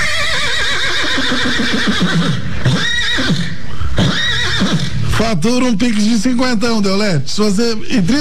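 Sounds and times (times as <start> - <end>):
horse neighing: 0.0 - 5.2
speech: 1.3 - 3.4, 5.2 - 8.1.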